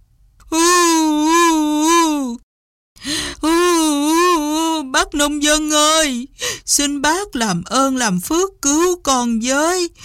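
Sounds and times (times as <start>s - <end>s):
voice imitating a crocodile fake crying and begging: 0.4s - 2.4s, 3.1s - 6.3s
speech: 5.1s - 10.0s.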